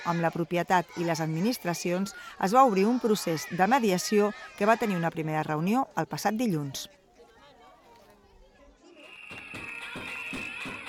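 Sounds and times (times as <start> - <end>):
speech: 0.0 - 7.0
protest whistles at the Department of Education headquarters in Barcelona: 9.0 - 10.8.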